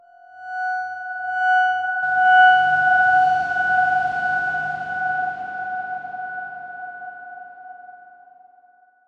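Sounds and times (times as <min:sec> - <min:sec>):
dark swarm tone: 0:02.0 - 0:07.8.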